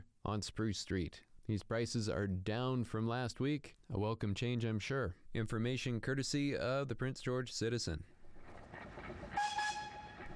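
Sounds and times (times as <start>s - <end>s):
speech: 0.2s - 8.9s
steam locomotive whistle blast: 9.3s - 10.3s.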